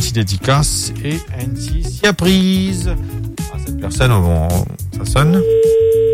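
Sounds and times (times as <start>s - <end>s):
speech: 0.1s - 6.1s
telephone ringback tone on an outgoing call: 5.3s - 6.1s.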